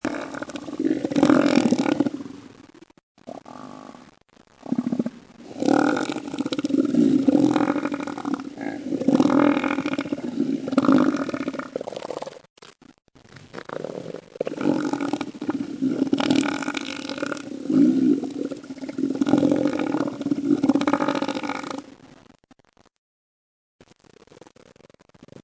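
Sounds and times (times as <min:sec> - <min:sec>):
southern elephant seal: 0:00.0 - 0:02.4, 0:04.6 - 0:12.4, 0:13.4 - 0:21.9.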